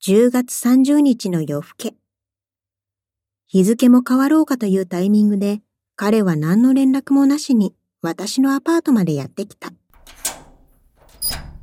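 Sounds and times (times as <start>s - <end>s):
speech: 0.0s - 2.0s, 3.5s - 10.3s
apartment door latch click: 9.9s - 11.6s.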